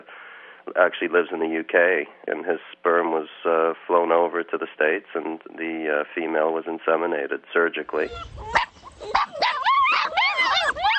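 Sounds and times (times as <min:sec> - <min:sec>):
speech: 0:00.7 - 0:09.4
litter of puppies howling and whimpering at a private dog farm in Kangal: 0:08.0 - 0:10.9
puppies pawing at a chicken wire fence: 0:08.0 - 0:10.9.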